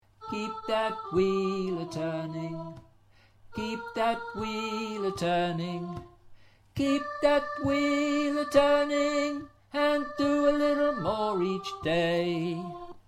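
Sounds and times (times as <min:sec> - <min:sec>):
tenor chorus voice singing: 0:00.2 - 0:02.8, 0:03.5 - 0:06.1, 0:06.8 - 0:13.0.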